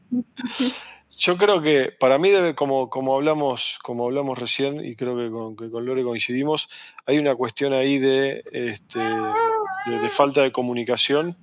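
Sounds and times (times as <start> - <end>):
speech: 0.1 - 11.4
child crying: 0.4 - 0.8, 9.0 - 10.4.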